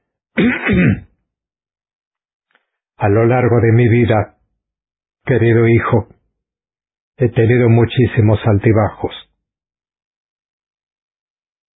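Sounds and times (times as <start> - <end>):
man clearing his throat: 0.4 - 1.1
speech: 0.4 - 1.1, 3.0 - 4.4, 5.2 - 6.2, 7.2 - 9.3.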